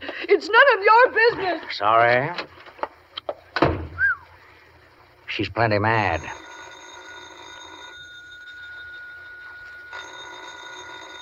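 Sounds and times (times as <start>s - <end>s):
speech: 0.4s - 2.5s, 5.4s - 6.4s
telephone bell ringing with a bright metallic trill: 6.0s - 11.2s.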